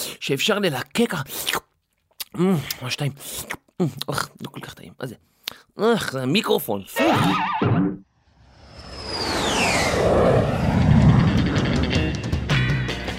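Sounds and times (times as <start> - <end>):
speech: 0.2 - 1.7, 2.3 - 8.1
high whine sweeping downward: 8.3 - 12.5
World War II US Air Force military airplanes flying at high altitude on bombing missions: 8.5 - 12.6.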